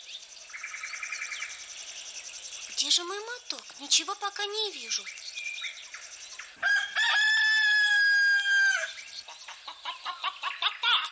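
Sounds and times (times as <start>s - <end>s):
speech: 2.9s - 5.4s
rooster crowing: 6.6s - 9.0s
hens clucking and chattering: 8.6s - 11.1s.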